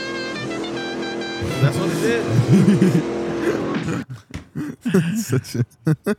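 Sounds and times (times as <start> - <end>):
car engine revving on a television show: 0.0 - 3.9
laughter: 1.4 - 6.1
speech: 1.4 - 6.1.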